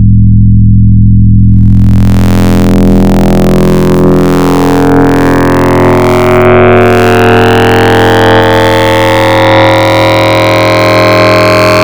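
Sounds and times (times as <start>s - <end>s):
synthesizer wavetable tones with modulated triangle oscillators: 0.0s - 11.8s.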